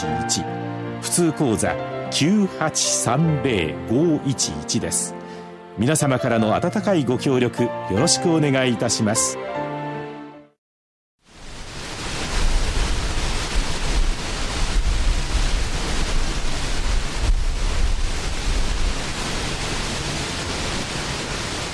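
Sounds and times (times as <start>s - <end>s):
speech: 0.0s - 9.8s
large waterfall roaring: 11.4s - 21.7s.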